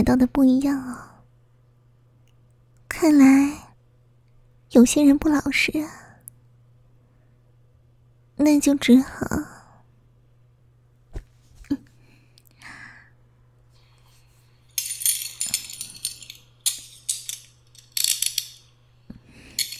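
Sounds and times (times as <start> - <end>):
speech: 0.0 - 1.1, 2.9 - 3.6, 4.7 - 6.0, 8.4 - 9.6
faint steady hum: 0.0 - 19.7
handcuffs ratcheting closed on a person being interrogated: 14.8 - 18.6, 19.6 - 19.7.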